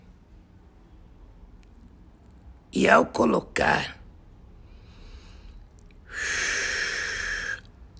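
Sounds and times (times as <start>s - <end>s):
speech: 2.8s - 4.0s
slow deep breath during a guided relaxation exercise: 4.6s - 7.7s.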